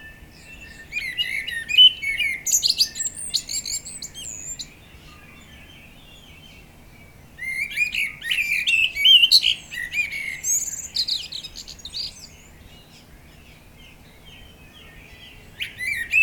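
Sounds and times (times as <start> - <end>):
common blackbird Turdus merula singing warbles and scratchy twitters: 0.0 - 16.2.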